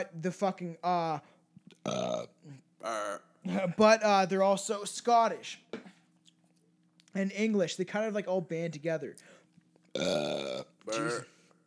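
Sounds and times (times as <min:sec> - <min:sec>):
speech: 0:00.0 - 0:05.7, 0:07.1 - 0:09.4, 0:10.0 - 0:11.3
loud drawn-out burps: 0:01.8 - 0:03.8, 0:09.9 - 0:11.4.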